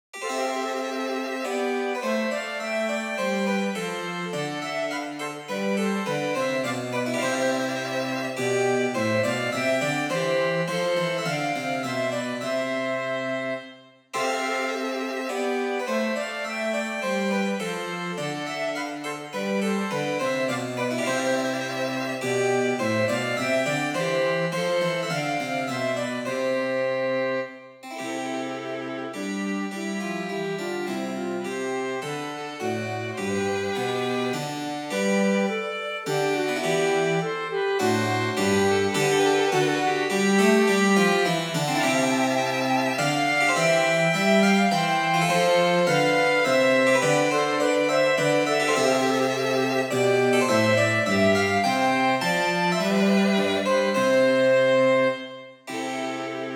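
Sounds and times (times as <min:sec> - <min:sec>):
minuet for flute violin cello and harpsichord: 0:00.1 - 0:56.5.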